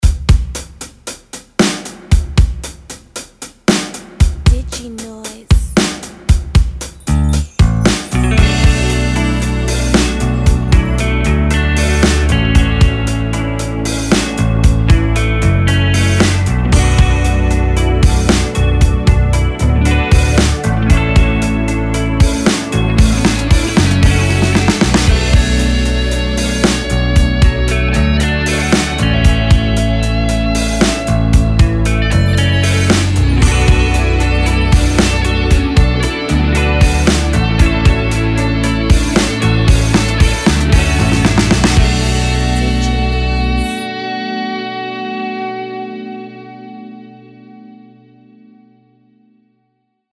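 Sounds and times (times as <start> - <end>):
pop drums: 0.0 - 43.7.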